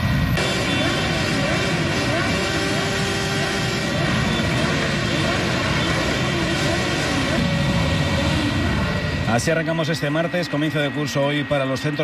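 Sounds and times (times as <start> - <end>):
group of motorcycle engines revving leaving a funeral: 0.1 - 10.9
speech: 9.4 - 12.0.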